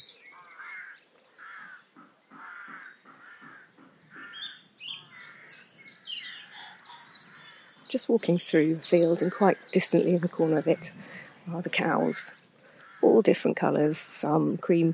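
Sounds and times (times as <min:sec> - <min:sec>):
rooks cawing at a rookery colony in Suffolk: 0:00.4 - 0:05.7, 0:12.6 - 0:13.1
speech: 0:07.9 - 0:12.4, 0:13.0 - 0:14.9.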